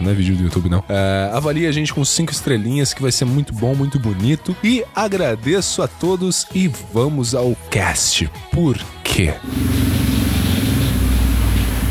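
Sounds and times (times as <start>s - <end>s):
speech: 0.0s - 10.2s
loud motorcycle engine rumbling and revving: 9.4s - 11.8s.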